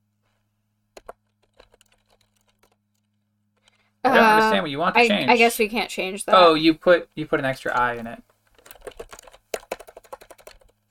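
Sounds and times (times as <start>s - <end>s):
typing on a computer keyboard: 1.0s - 3.8s, 7.7s - 10.9s
speech: 4.5s - 8.3s.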